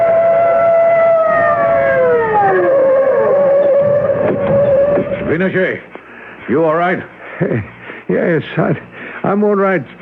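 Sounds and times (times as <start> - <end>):
sirens of two police patrol cars wailing at night: 0.0 - 5.3
speech: 5.4 - 5.9, 6.5 - 10.0.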